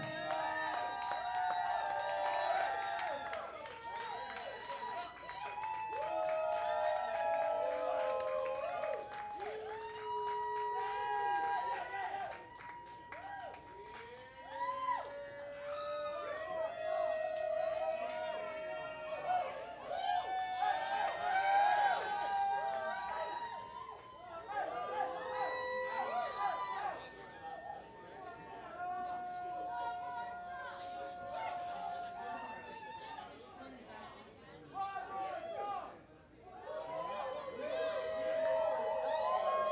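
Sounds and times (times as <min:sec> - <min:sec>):
crowd noise: 0:00.0 - 0:39.6.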